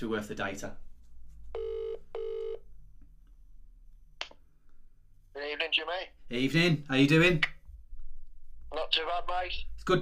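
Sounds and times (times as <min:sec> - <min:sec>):
speech: 0:00.0 - 0:00.9, 0:05.7 - 0:07.5, 0:08.7 - 0:09.9
WhatsApp call ringing tone beeps: 0:01.6 - 0:02.6.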